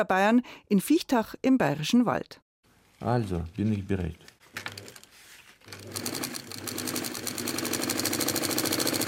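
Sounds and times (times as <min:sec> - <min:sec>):
speech: 0:00.0 - 0:02.4, 0:03.0 - 0:04.3
sewing machine running with rapid mechanical clatter: 0:04.7 - 0:09.0.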